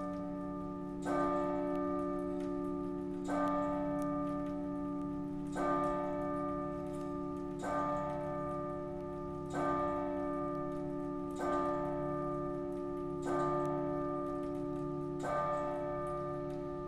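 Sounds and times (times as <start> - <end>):
church bell tolling in an old town on Christmas Eve: 0.0 - 16.8.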